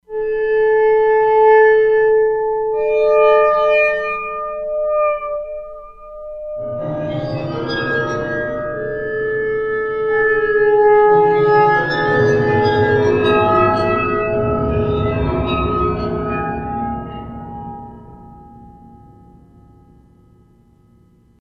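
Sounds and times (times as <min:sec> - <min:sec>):
waterphone factory patch on E-mu Proteus-3 synthesizer: 0:00.1 - 0:21.2.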